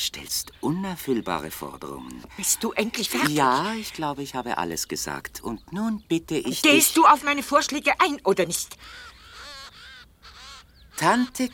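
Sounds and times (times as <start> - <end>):
speech: 0.1 - 9.1, 11.0 - 11.5
ravens cawing: 8.5 - 11.5.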